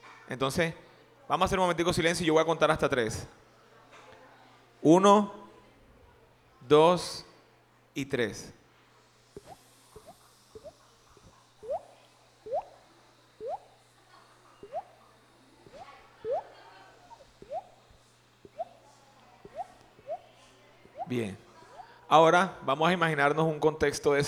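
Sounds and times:
speech: 0.3s - 3.4s, 4.8s - 5.4s, 6.6s - 7.3s, 8.0s - 8.6s, 21.1s - 21.4s, 22.1s - 24.2s
group of people imitating bubbles, rain, river and sea with their voices: 9.4s - 12.8s, 13.4s - 14.0s, 14.6s - 18.8s, 19.5s - 22.0s.

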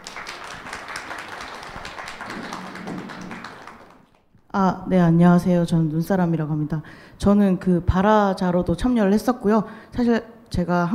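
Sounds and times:
room full of people applauding: 0.0s - 4.3s
speech: 4.5s - 10.9s.

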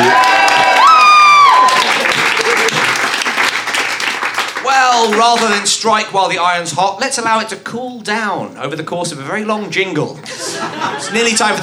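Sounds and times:
high sustained whoop of cheering: 0.0s - 2.9s
crowd applauding: 0.0s - 5.9s
laughter: 2.1s - 3.0s, 10.2s - 11.6s
speech: 5.3s - 11.6s.

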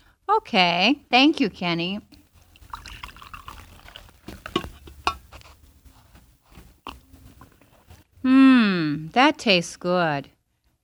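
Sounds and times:
speech: 0.4s - 2.1s, 9.2s - 10.4s
ceramic clinking taps: 2.1s - 7.9s
coffee pouring into a cup: 2.1s - 8.0s.

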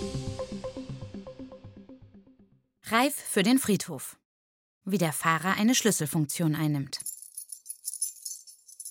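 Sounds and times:
speech: 2.9s - 4.2s, 4.9s - 7.1s
keys jangling: 7.0s - 8.8s.

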